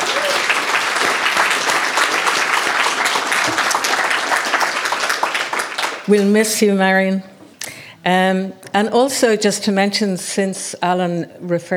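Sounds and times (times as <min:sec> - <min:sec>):
room full of people applauding: 0:00.0 - 0:06.3
speech: 0:06.1 - 0:07.3, 0:08.0 - 0:11.7.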